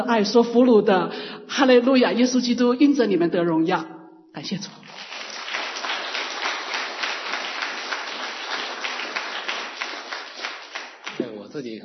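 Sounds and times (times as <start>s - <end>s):
speech: 0.0s - 4.8s
Christian audience applauding: 4.8s - 11.4s.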